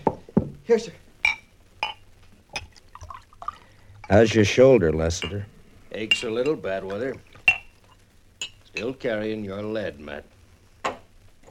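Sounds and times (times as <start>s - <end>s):
speech: 0.7s - 1.0s, 4.1s - 7.3s, 8.8s - 10.3s
sharp glassy clinks: 1.2s - 2.0s, 5.2s - 7.7s
whiskey poured from a bottle into a glass at a bar: 2.5s - 4.2s.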